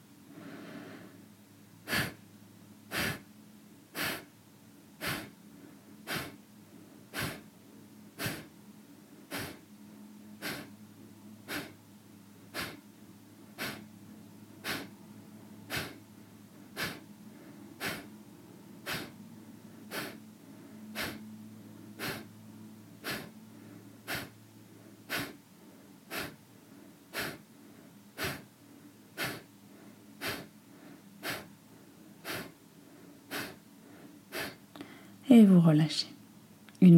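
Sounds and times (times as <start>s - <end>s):
forceful breaths in and out through the nose during a kriya breathing exercise: 0.4s - 1.2s, 1.8s - 2.2s, 2.9s - 3.3s, 3.9s - 4.4s, 5.0s - 7.5s, 8.1s - 9.7s, 10.4s - 10.8s, 11.4s - 11.8s, 12.5s - 13.9s, 14.6s - 15.0s, 15.7s - 18.1s, 18.8s - 22.3s, 23.0s - 35.2s
speech: 35.3s - 36.2s.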